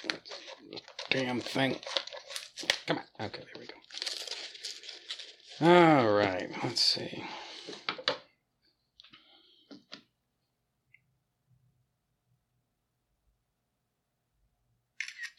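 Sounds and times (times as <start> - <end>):
faint handling noises: 0.0 - 5.6
speech: 0.7 - 2.0, 2.9 - 3.8, 5.6 - 8.2
camera shutter clicks taking pictures: 15.0 - 15.3.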